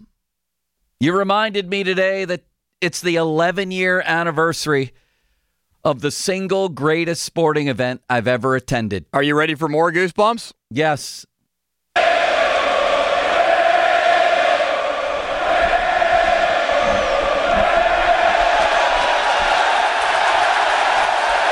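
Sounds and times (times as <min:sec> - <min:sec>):
speech: 0:01.0 - 0:05.0, 0:05.8 - 0:11.3
packed baseball stadium crowd roaring and jeering at the pitcher: 0:12.0 - 0:21.4.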